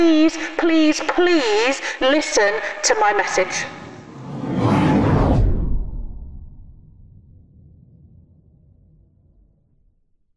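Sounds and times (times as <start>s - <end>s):
speech: 0.0s - 3.8s
whooshing roar of meteors falling from the sky: 3.5s - 8.0s
low lingering rumble: 3.6s - 10.1s.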